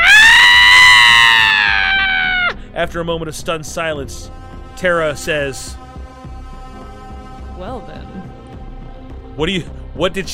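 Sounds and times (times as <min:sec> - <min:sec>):
man screaming while running away: 0:00.0 - 0:02.6
speech: 0:02.8 - 0:05.8, 0:07.6 - 0:08.4, 0:09.4 - 0:10.3.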